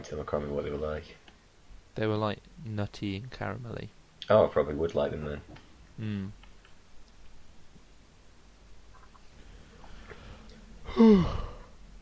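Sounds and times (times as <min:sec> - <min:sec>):
speech: 0:00.0 - 0:01.2, 0:02.0 - 0:06.4, 0:10.9 - 0:11.5
faint small clicks: 0:06.4 - 0:07.9
big yawn: 0:10.8 - 0:11.7.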